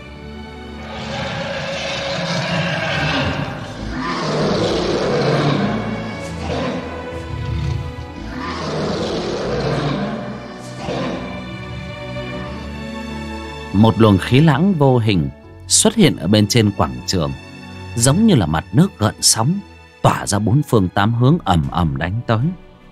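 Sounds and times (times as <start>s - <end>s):
huge dragon roaring: 0.7s - 12.6s
speech: 13.8s - 17.4s, 18.0s - 22.6s.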